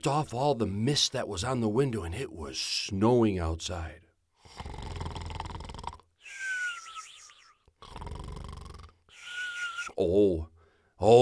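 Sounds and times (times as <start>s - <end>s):
speech: 0.0s - 4.8s, 10.0s - 11.2s
person imitating loud snoring of a man asleep in a chair: 4.4s - 9.5s.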